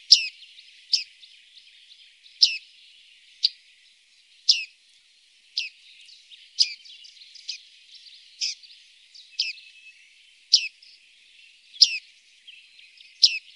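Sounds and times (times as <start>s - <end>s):
bearded reedling metallic ping calls: 0.0s - 1.1s, 2.4s - 2.6s, 4.5s - 4.7s, 6.6s - 6.8s, 8.4s - 8.6s, 9.4s - 9.6s, 10.5s - 10.7s, 11.8s - 12.0s, 13.2s - 13.5s.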